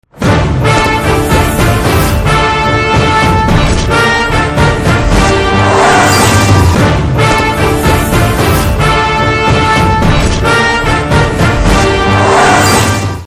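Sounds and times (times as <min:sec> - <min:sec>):
trailer background music tone: 0:00.0 - 0:13.2.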